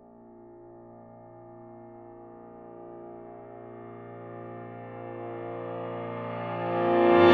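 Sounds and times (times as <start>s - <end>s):
piano: 0.0s - 7.3s.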